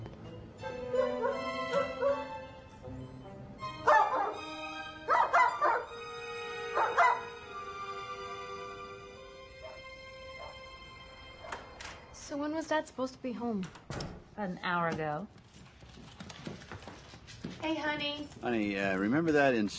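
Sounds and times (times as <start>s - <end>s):
dog barking in short sharp bursts: 0.7s - 2.4s, 3.9s - 4.5s, 5.1s - 6.0s, 6.7s - 7.4s, 9.6s - 10.6s
speech: 12.4s - 15.4s, 17.6s - 19.7s.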